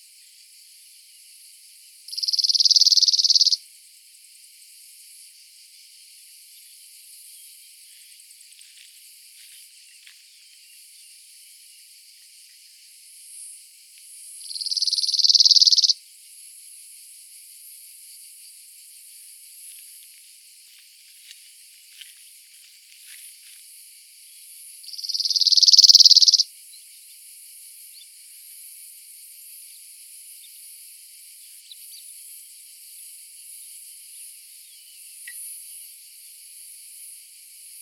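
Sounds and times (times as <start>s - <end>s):
cicadas: 0.0s - 37.8s
adult male cirl bunting Emberiza cirlus full song: 2.1s - 3.6s, 14.6s - 15.9s, 24.9s - 26.4s.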